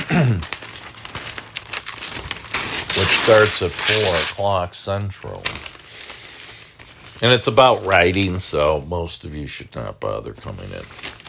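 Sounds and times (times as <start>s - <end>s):
paper rustling: 0.0s - 9.0s, 10.3s - 11.2s
page being torn out: 0.4s - 4.6s, 5.2s - 8.4s, 10.4s - 11.2s
speech: 3.3s - 5.8s, 7.2s - 11.1s.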